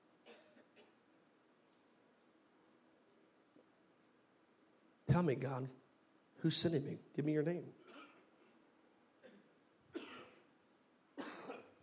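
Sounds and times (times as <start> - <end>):
sharp breathy coughs: 0.2 - 1.0, 7.8 - 8.3, 9.2 - 10.5, 11.2 - 11.8
speech: 5.2 - 5.8, 6.4 - 7.9.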